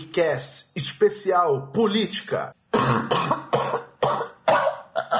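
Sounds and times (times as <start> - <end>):
speech: 0.2 - 3.2
person coughing harshly: 2.8 - 5.1.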